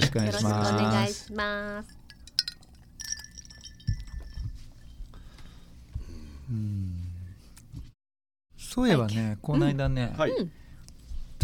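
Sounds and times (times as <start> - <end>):
glasses clinking in a toast: 0.0 - 1.1, 1.7 - 5.2
speech: 0.2 - 2.0, 6.5 - 7.0, 8.8 - 10.6.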